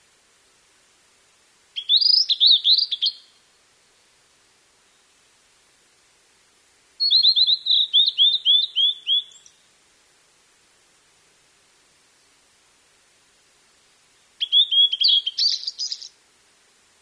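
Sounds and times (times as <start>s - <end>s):
Blue-and-white flycatcher singing sweet slurred whistles: 1.8s - 3.4s, 7.0s - 9.6s, 14.4s - 16.1s.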